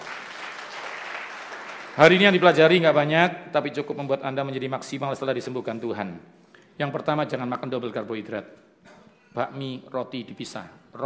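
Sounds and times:
crowd applauding: 0.0s - 2.6s
speech: 2.0s - 8.6s, 9.3s - 11.0s.

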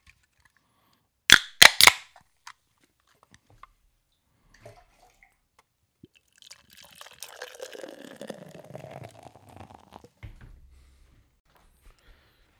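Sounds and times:
rye IPA can or bottle cracking open with hiss: 1.3s - 2.0s
rye IPA beer fizzing and gurgling as it is poured: 6.1s - 10.1s.

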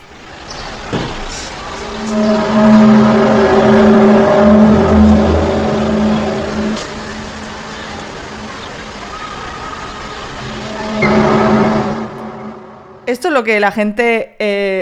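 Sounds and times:
mysterious low sky hum at night: 0.0s - 13.1s
speech: 13.4s - 14.8s.

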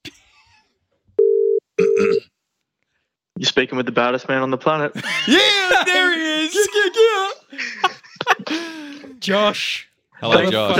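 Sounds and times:
ringback tones of an outgoing phone call: 1.2s - 2.2s
speech: 3.4s - 7.9s, 8.5s - 10.7s.

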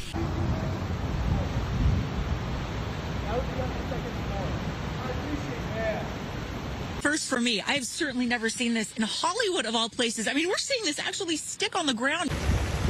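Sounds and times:
steady unbroken heavy rain: 0.0s - 7.0s, 12.3s - 12.8s
speech: 7.2s - 12.5s.

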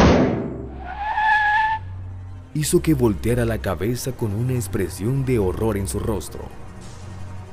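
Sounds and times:
loud crash of a truck hitting two young girls: 0.0s - 1.2s
truck tires screeching in a skid: 0.0s - 2.0s
speech: 2.6s - 6.6s.

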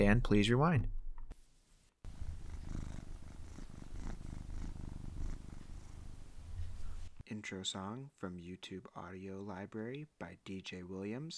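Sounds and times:
speech: 0.0s - 1.0s, 7.3s - 11.3s
cat purring: 2.1s - 7.2s.

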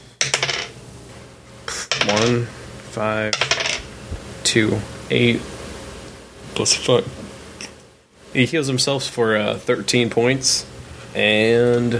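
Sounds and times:
dice clattering across a hard surface: 0.2s - 0.7s, 1.7s - 2.3s, 3.3s - 3.8s
speech: 2.0s - 3.6s, 4.4s - 5.5s, 6.6s - 7.3s, 8.4s - 11.9s.

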